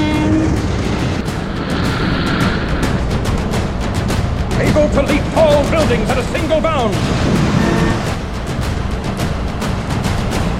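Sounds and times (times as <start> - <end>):
locomotive horn note: 0.0 - 0.8, 7.6 - 8.3
locomotive roaring: 0.0 - 10.5
speech: 5.6 - 7.4.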